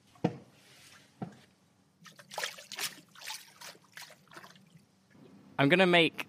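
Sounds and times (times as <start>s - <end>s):
water sloshing as a paddle makes waves in a water tank: 2.0s - 5.4s
speech: 5.6s - 6.2s.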